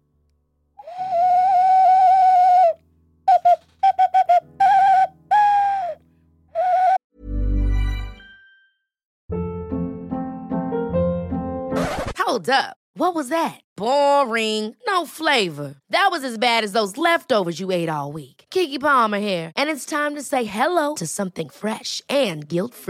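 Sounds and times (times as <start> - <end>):
music: 0.0 - 12.2
Spanish clay whistle ocarina melody: 0.8 - 7.0
speech: 12.4 - 22.8.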